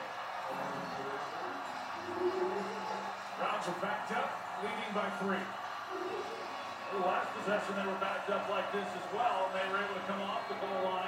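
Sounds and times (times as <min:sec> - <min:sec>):
large stadium crowd roaring at an American football game: 0:00.0 - 0:11.0
speech: 0:03.6 - 0:05.6, 0:06.9 - 0:11.0.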